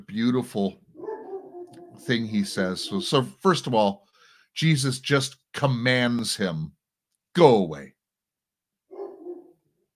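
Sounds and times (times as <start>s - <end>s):
speech: 0.1s - 0.8s, 2.0s - 6.8s, 7.4s - 8.0s
dog barking muffled from another room downstairs: 1.0s - 3.2s, 8.9s - 9.6s.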